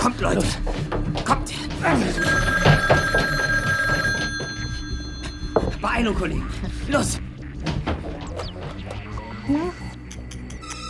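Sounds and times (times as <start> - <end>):
speech: 0.1 - 2.4, 5.8 - 7.3, 9.5 - 9.8
telephone ringing with a trilling bell: 1.8 - 5.8.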